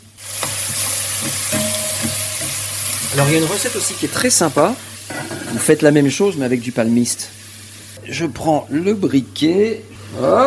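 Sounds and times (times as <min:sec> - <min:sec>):
oyster mushrooms frying golden in a pan: 0:00.0 - 0:08.0
speech: 0:03.1 - 0:04.9, 0:05.5 - 0:07.4, 0:08.1 - 0:10.4.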